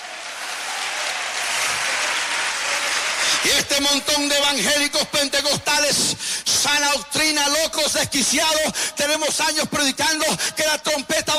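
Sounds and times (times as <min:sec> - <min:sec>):
large church congregation clapping: 0:00.0 - 0:04.7
speech: 0:03.4 - 0:11.3.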